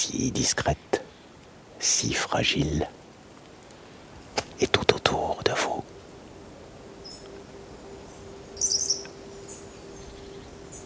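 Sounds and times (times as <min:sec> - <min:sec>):
speech: 0:00.0 - 0:01.0, 0:01.8 - 0:03.0, 0:04.6 - 0:04.8
steady low hum: 0:00.0 - 0:10.8
light high-pitched bird twittering: 0:05.1 - 0:10.8.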